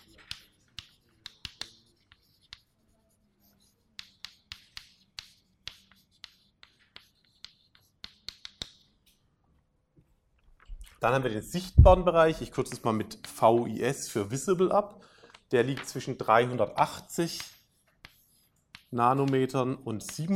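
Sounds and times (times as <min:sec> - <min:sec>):
pen writing by hand: 0:00.0 - 0:09.2, 0:17.2 - 0:20.3
speech: 0:11.0 - 0:17.5, 0:18.9 - 0:20.3.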